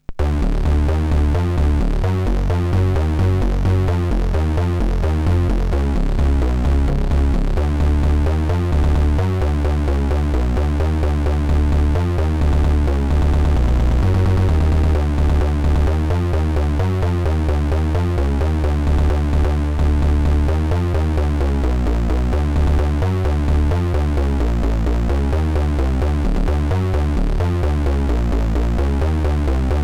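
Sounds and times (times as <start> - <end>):
industrial EBM music: 0.0 - 29.8.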